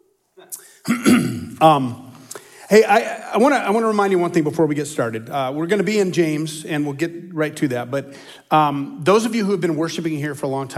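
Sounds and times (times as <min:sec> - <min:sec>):
man coughing: 0:00.4 - 0:01.9
man clearing his throat: 0:00.4 - 0:02.0
speech: 0:00.5 - 0:02.0, 0:02.7 - 0:10.7.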